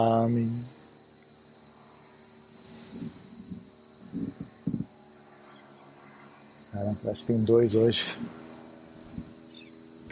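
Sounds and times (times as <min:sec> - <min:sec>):
speech: 0:00.0 - 0:00.8, 0:07.0 - 0:08.4
fly buzzing: 0:00.0 - 0:10.1.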